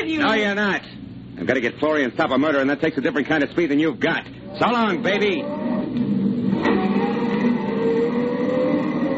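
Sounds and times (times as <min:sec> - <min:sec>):
speech: 0:00.0 - 0:06.2
car engine roaring as the vehicle drives hard: 0:04.4 - 0:09.1.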